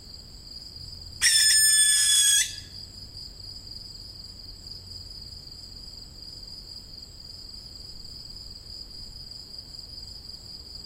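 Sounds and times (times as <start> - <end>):
constant shrill hum of insects: 0.0 - 10.8
young barn owl raspy hiss call: 1.2 - 2.7.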